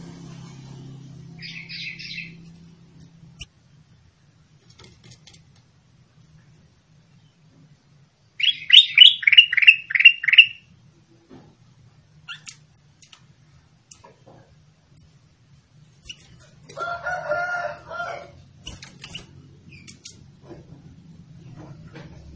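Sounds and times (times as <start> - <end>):
sooty-headed bulbul song: 8.4 - 10.7.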